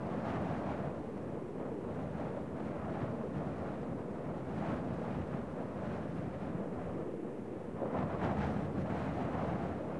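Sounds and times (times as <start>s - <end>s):
gusty wind: 0.0s - 9.9s.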